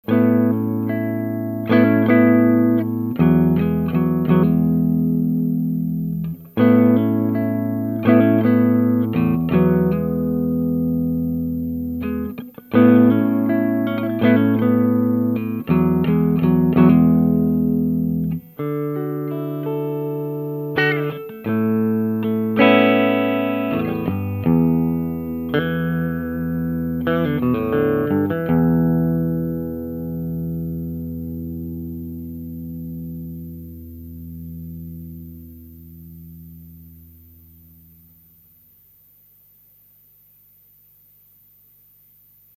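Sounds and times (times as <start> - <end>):
Tele guitar through a pentode filter: 0.0 - 42.5.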